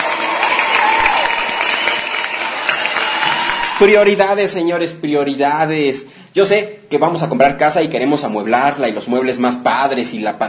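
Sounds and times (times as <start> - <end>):
studio audience applause: 0.0 - 4.1
speech: 3.8 - 10.4.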